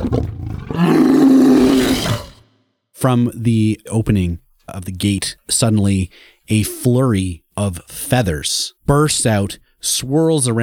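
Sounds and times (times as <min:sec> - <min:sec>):
huge sustained Tyrannosaurus rex roar sound effect: 0:00.0 - 0:02.5
speech: 0:03.0 - 0:10.6.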